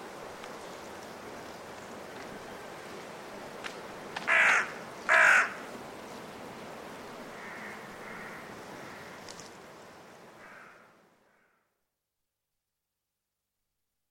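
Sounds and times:
blustery force 6 wind rushing through winter woodland in Gloucestershire: 0.0 - 10.8
carrion crows cawing in woodland trees before roosting in winter: 4.2 - 5.7, 7.3 - 9.3, 10.4 - 11.8.

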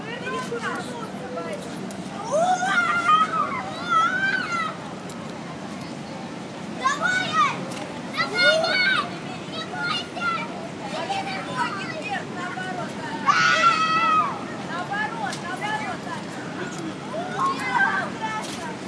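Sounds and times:
hubbub of chatter: 0.0 - 18.8
little kids screaming and shrieking while playing: 2.2 - 4.8, 13.2 - 14.4.

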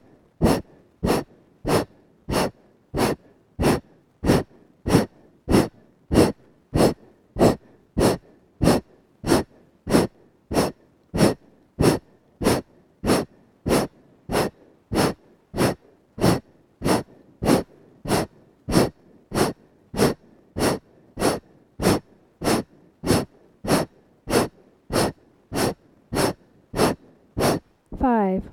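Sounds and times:
forceful rhythmic breathing from a breathing exercise: 0.0 - 28.0
speech: 28.0 - 28.5.

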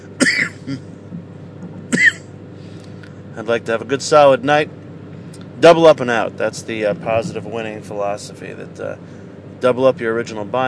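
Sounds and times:
person coughing: 0.1 - 0.9, 1.9 - 2.3
speech: 0.7 - 1.0, 3.4 - 4.8, 5.6 - 10.6.

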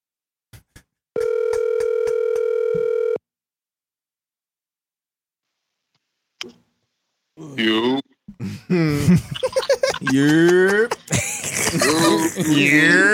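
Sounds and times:
telephone ringing on an outgoing call: 1.2 - 3.2
speech: 8.7 - 9.5, 10.1 - 11.0, 11.9 - 13.1
laughter: 8.7 - 13.1.

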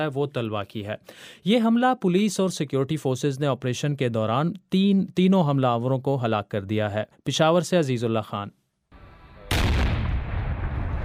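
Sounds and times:
speech: 0.0 - 8.6
explosion of hand grenades being destroyed after building search: 9.0 - 11.0.

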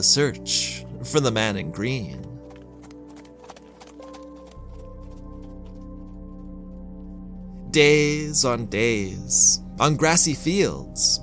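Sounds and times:
speech: 0.0 - 2.2, 7.7 - 11.2
sustained tonal music bed: 0.0 - 11.2
horse hoofbeats galloping: 1.9 - 7.2.

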